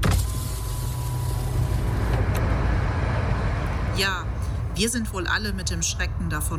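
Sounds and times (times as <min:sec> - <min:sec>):
electric car window sliding open: 0:00.0 - 0:03.9
car engine rumble and road noise inside a moving car: 0:00.0 - 0:06.5
speech: 0:04.8 - 0:06.5.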